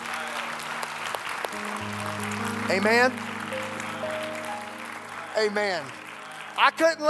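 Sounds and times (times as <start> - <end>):
audience clapping after a prayer: 0.0 - 7.0
low sustained musical tones: 1.5 - 7.0
speech: 2.7 - 3.3, 5.4 - 6.0, 6.6 - 7.0.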